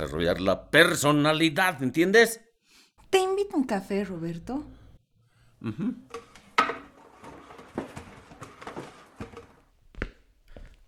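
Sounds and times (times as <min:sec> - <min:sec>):
speech: 0:00.0 - 0:02.5, 0:03.1 - 0:04.8, 0:05.6 - 0:06.2
dishes and cutlery clattering: 0:06.1 - 0:09.6.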